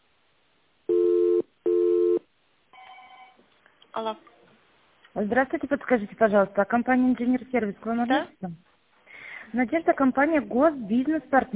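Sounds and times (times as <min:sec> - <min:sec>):
telephone ringback beeps while a caller waits for an answer: 0:00.9 - 0:02.2, 0:02.8 - 0:03.4
fainter higher telephone tone: 0:00.9 - 0:03.4
speech: 0:04.0 - 0:04.4, 0:05.2 - 0:08.7, 0:09.5 - 0:11.5.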